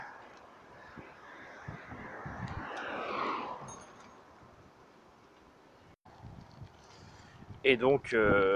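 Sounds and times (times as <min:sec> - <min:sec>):
wind buffeting a microphone outdoors: 0:00.7 - 0:04.8, 0:06.1 - 0:08.5
speech: 0:07.6 - 0:08.5.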